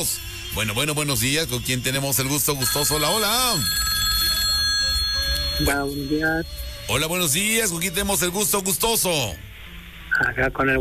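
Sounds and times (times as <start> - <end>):
speech: 0.0 - 3.9, 5.6 - 9.4, 10.2 - 10.8
telephone ringing for a radio call-in: 2.4 - 8.2.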